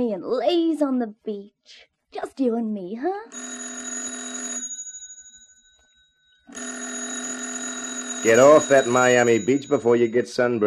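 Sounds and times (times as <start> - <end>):
speech: 0.0 - 3.8, 8.2 - 10.6
loud telephone bell ringing: 3.3 - 10.2.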